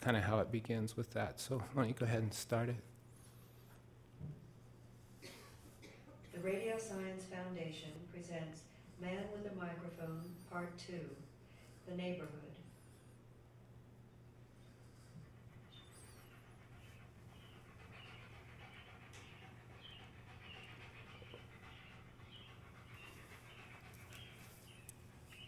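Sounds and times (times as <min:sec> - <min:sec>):
speech: 0:00.0 - 0:03.0, 0:06.4 - 0:11.3, 0:11.9 - 0:12.5
steady hum: 0:00.0 - 0:25.4
dog panting: 0:06.4 - 0:13.3, 0:14.4 - 0:25.4.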